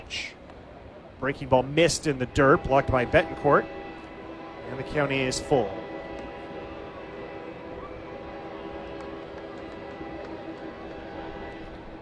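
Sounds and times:
outdoor ambience at a night baseball game: 0.0 - 12.0
train rumbling past on tracks beyond a ballpark: 0.0 - 12.0
speech: 1.2 - 3.8, 4.7 - 5.8
faint horn-like hum: 2.2 - 12.0.

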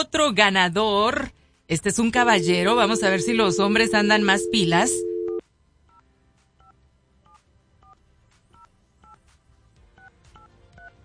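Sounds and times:
speech: 0.0 - 5.1
touch-tone telephone dialing beeps: 2.2 - 5.4.

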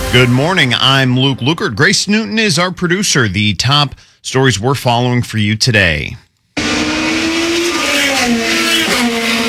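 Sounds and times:
speech: 0.1 - 6.7
IndyCar race cars high-revving at a Grand Prix: 6.6 - 9.4.

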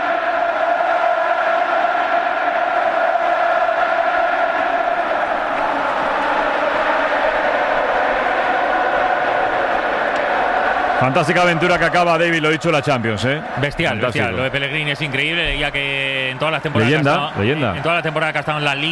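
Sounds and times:
large football stadium crowd roaring and cheering: 0.0 - 18.9
speech: 11.0 - 18.9.

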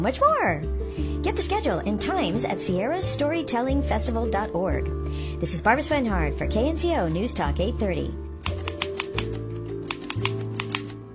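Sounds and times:
speech: 0.0 - 8.2
typewriter keys clacking: 8.4 - 11.0.

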